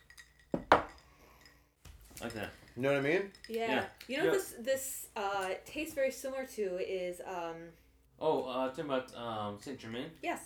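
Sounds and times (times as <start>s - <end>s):
glasses clinking in a toast: 0.0s - 4.4s
speech: 2.2s - 10.4s.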